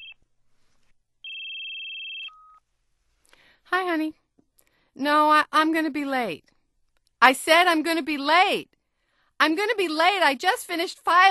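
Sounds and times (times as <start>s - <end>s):
cell phone electronic chirp on receiving a call: 0.0s - 0.2s, 1.2s - 2.6s
speech: 3.9s - 4.2s, 5.0s - 6.5s, 7.2s - 8.7s, 9.4s - 11.2s.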